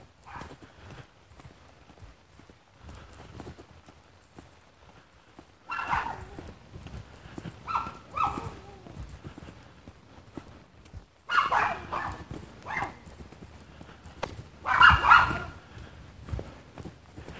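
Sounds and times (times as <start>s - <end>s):
small dog yapping in high-pitched bursts: 5.7s - 6.5s, 7.6s - 9.0s, 11.3s - 13.0s, 14.6s - 15.5s.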